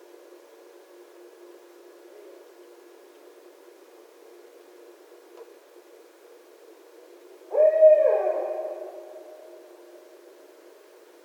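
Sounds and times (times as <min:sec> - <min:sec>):
barred owl hooting: 0:07.5 - 0:09.8.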